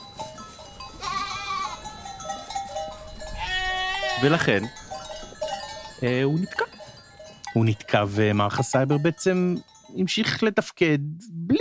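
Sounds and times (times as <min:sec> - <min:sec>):
goats bleating: 0:00.9 - 0:02.0, 0:03.4 - 0:04.7
speech: 0:04.2 - 0:04.8, 0:06.0 - 0:06.8, 0:07.6 - 0:11.5.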